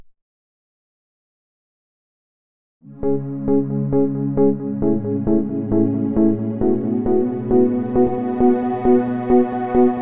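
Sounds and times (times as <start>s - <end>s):
sampler and synthesizer module sounds: 2.8s - 10.0s.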